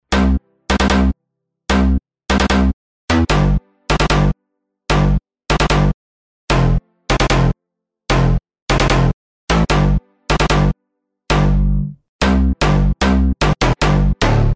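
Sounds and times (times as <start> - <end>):
rave bass music: 0.0 - 5.9, 8.2 - 10.7, 11.3 - 14.5.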